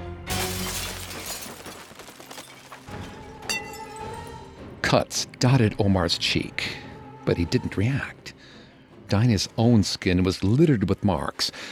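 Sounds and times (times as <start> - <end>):
glass shards tinkling and scattering onto a stage and audience: 0.3 - 4.4
glass light covers shattering with a loud crash: 0.3 - 4.5
speech: 4.9 - 8.2, 9.1 - 11.6.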